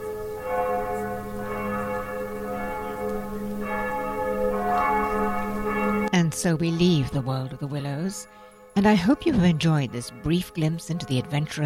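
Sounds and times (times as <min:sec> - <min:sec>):
distant church bells ringing a joyous peal: 0:00.0 - 0:11.6
speech: 0:06.4 - 0:11.6.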